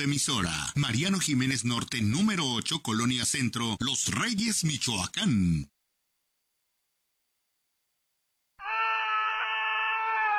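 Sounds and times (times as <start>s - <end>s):
speech: 0.0s - 5.8s
person screaming: 8.6s - 10.3s.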